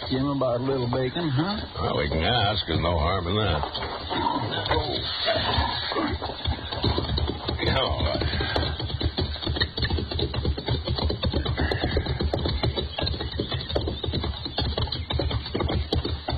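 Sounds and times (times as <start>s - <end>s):
horses approaching with hooves clopping: 0.0s - 16.3s
speech: 0.1s - 8.7s.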